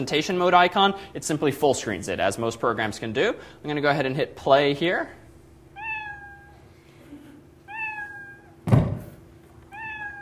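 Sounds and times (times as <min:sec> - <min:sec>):
speech: 0:00.0 - 0:05.2
cat meows played by a computer program: 0:05.8 - 0:06.6, 0:07.7 - 0:08.6, 0:09.7 - 0:10.2
dull thump: 0:08.6 - 0:09.2.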